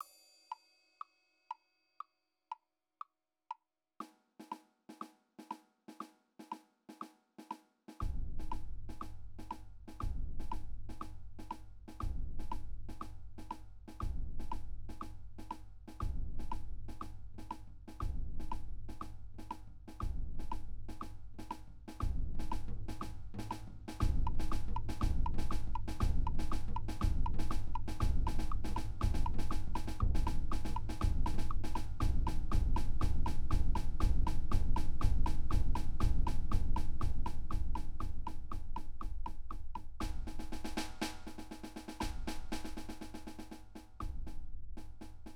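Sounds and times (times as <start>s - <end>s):
snare drum: 4.4s - 45.3s
ride cymbal: 18.5s - 44.2s.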